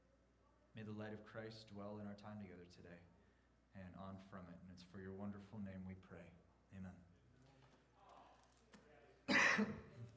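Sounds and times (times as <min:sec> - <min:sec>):
speech: 0:00.8 - 0:07.1, 0:09.6 - 0:09.8
person coughing: 0:09.3 - 0:10.1.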